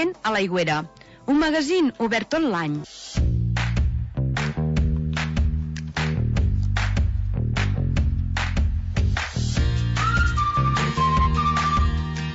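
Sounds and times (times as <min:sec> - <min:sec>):
speech: 0:00.0 - 0:03.0
upbeat band backing with punchy drum hits: 0:03.2 - 0:12.3
tune whistled in a thin clear tone: 0:09.8 - 0:12.2.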